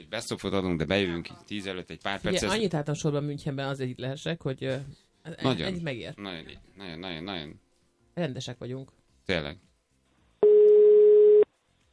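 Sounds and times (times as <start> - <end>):
speech: 0.1 - 7.6, 8.2 - 9.7
telephone ringback tone: 10.4 - 11.4.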